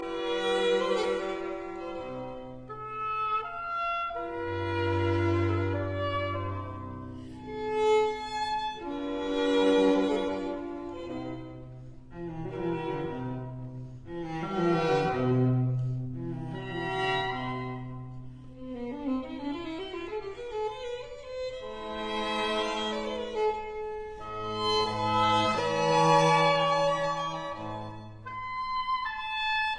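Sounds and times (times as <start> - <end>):
oboe and string trio playing an andante: 0.0 - 29.7.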